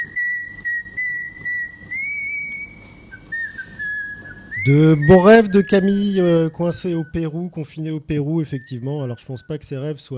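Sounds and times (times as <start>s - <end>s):
whistled melody from a pop song recording: 0.0s - 7.5s, 8.4s - 9.8s
soft music or hum: 0.0s - 10.1s
speech: 4.6s - 10.1s.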